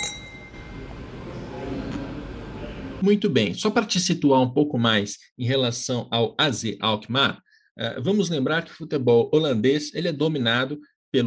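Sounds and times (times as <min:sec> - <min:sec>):
wine glass and beer glass clinking in a toast: 0:00.0 - 0:01.2
low chatter: 0:00.6 - 0:03.0
steady murmur of room noise: 0:00.6 - 0:03.0
speech: 0:03.0 - 0:11.2.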